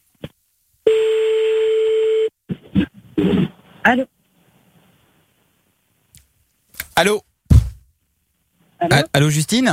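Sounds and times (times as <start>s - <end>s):
outgoing telephone call buzzing ringback tones: 0.9s - 2.3s
speech: 3.9s - 4.1s, 7.0s - 7.3s, 8.9s - 9.7s.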